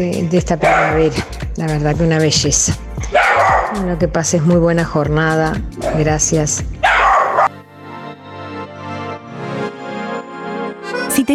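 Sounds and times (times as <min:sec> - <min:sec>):
speech: 0:00.0 - 0:06.8
dog barking: 0:00.6 - 0:01.3, 0:03.0 - 0:03.8, 0:05.8 - 0:06.1, 0:06.8 - 0:07.6
dog whining: 0:03.1 - 0:03.8, 0:06.8 - 0:07.5.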